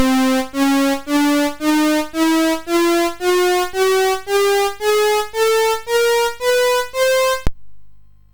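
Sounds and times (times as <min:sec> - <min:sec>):
thirteen note scale on a CSG8580R5 sound chip: 0:00.0 - 0:07.5.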